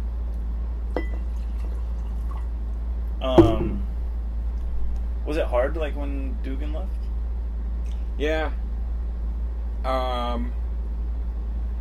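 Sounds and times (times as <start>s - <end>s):
steady low hum: 0.0s - 11.7s
speech: 1.0s - 1.2s, 3.2s - 3.8s, 5.3s - 7.0s, 8.2s - 8.6s, 9.8s - 10.6s
beer poured into a glass: 1.0s - 2.5s.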